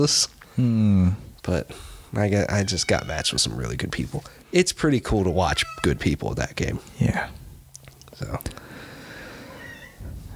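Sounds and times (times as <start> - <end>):
speech: 0.0 - 7.4, 8.2 - 8.6
female cat meowing loudly, agitated: 2.5 - 3.5, 5.3 - 6.1, 9.5 - 10.2.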